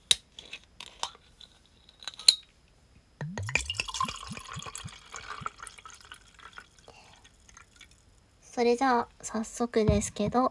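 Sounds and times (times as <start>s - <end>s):
Chamisul soju bottle opening clicks and clinks: 2.0s - 2.5s, 3.2s - 5.6s
soju glugging from the bottle into a glass: 3.2s - 8.0s
speech: 8.6s - 10.4s.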